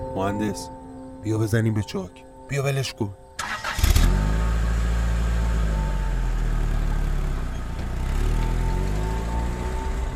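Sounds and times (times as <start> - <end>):
speech: 0.2 - 3.2
car engine cranking, starting and revving: 3.4 - 10.1.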